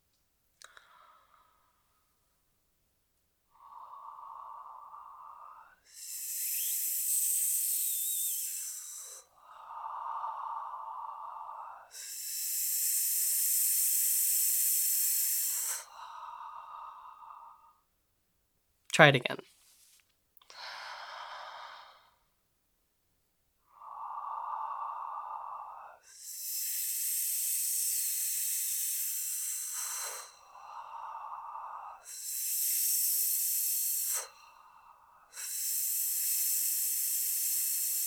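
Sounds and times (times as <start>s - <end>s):
soft open breathy exhale in a breathing exercise: 0.6s - 2.1s, 3.5s - 17.9s, 20.5s - 22.2s, 23.7s - 38.0s
bright sharp hissing exhale in a breathing exercise: 3.6s - 17.7s, 23.7s - 38.0s
speech: 19.0s - 19.6s.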